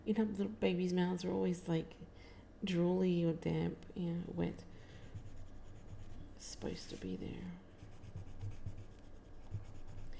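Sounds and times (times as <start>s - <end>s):
speech: 0.0s - 4.7s, 6.4s - 7.6s
pencil scratching on paper while sketching a baby's face: 4.9s - 7.2s, 7.8s - 10.1s.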